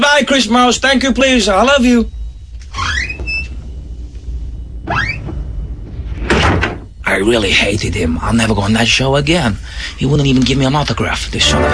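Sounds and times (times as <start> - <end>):
speech: 0.1 - 2.2, 7.1 - 11.7
door sound effect with rising mechanical whoosh: 2.2 - 7.2.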